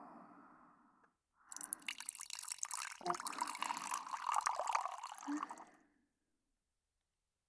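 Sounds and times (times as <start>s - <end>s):
soft drip: 1.5s - 5.7s
yellow-type black tea pouring from a pot into a cup: 1.5s - 5.7s.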